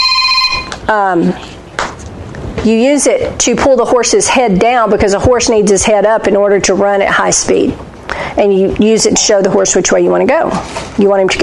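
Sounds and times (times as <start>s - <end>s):
mobile phone ringing with electronic tones: 0.0s - 0.8s
speech: 0.9s - 1.5s, 2.6s - 11.4s.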